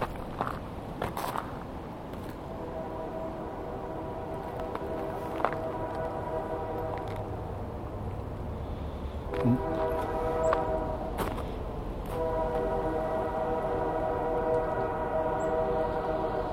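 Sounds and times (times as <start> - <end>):
train rumbling past: 0.0 - 16.5
train whistle blown at a trail crossing: 2.5 - 7.3, 9.2 - 11.3, 12.0 - 16.5.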